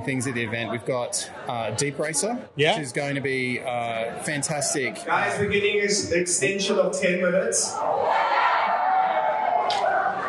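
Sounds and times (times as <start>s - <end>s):
speech: 0.0s - 8.5s
group of students cheering with shouts and whoops: 7.7s - 10.2s.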